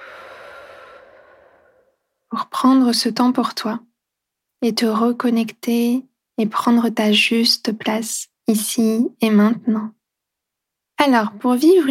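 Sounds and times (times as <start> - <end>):
long deep breath out: 0.0 - 2.2
speech: 2.3 - 3.9, 4.6 - 10.0, 11.0 - 11.8.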